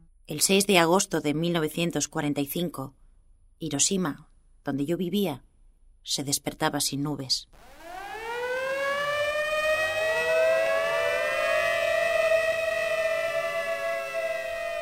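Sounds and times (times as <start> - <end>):
speech: 0.3 - 3.0, 3.6 - 7.8
air raid siren wailing: 7.6 - 14.8.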